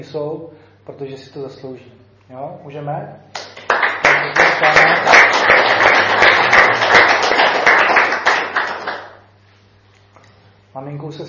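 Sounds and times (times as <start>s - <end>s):
speech: 0.0s - 3.4s, 10.8s - 11.2s
crowd applauding with many hands clapping: 3.4s - 9.3s.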